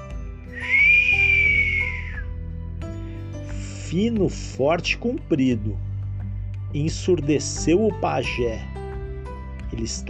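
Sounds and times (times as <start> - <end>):
long loud high-pitched whistle: 0.5 - 2.3
speech: 3.9 - 5.9, 6.8 - 8.8, 9.7 - 10.0.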